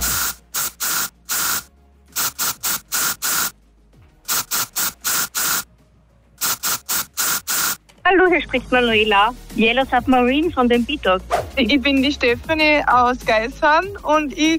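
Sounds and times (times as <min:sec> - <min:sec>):
deodorant spray can hissing in rhythmic bursts: 0:00.0 - 0:03.6, 0:04.2 - 0:05.7, 0:06.4 - 0:07.8
speech: 0:08.1 - 0:14.5.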